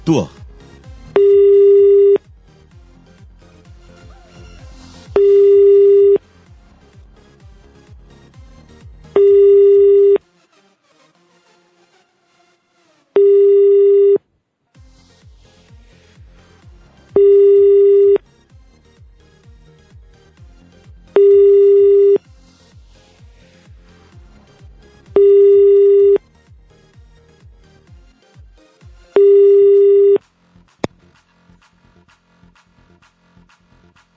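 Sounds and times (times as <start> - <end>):
quiet music: 0.0 - 30.2
speech: 0.1 - 0.4
phone line ringback tones ringing unanswered: 1.2 - 2.2, 5.2 - 6.2, 9.2 - 10.2, 13.2 - 14.2, 17.2 - 18.2, 21.2 - 22.2, 25.2 - 26.2, 29.2 - 30.2.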